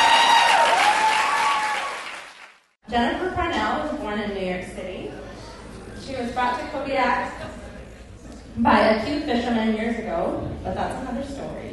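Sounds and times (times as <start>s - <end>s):
audience applause at a live storytelling show: 0.0s - 2.7s
speech: 2.9s - 5.2s, 6.1s - 7.6s, 8.6s - 11.7s.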